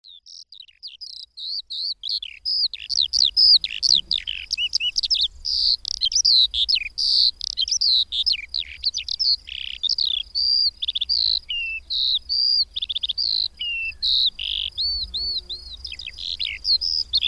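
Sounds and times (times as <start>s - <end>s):
Eurasian skylark singing: 0.0s - 17.2s.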